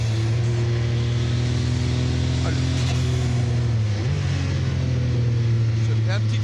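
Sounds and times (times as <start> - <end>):
800-horsepower race car engine roaring while accelerating out of a corner: 0.0 - 6.4.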